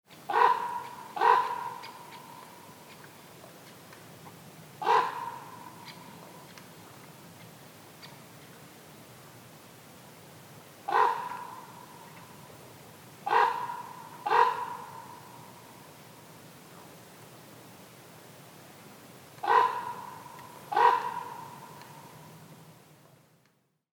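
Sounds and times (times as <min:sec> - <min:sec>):
common raven calling: 0:00.3 - 0:03.1, 0:04.8 - 0:06.6, 0:10.9 - 0:12.3, 0:13.2 - 0:15.6, 0:19.4 - 0:22.2.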